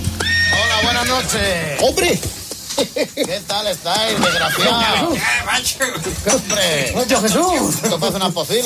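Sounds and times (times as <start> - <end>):
horse whinnying: 0.2 - 2.1, 4.0 - 5.7
laughter: 0.5 - 8.6
speech: 1.0 - 8.6.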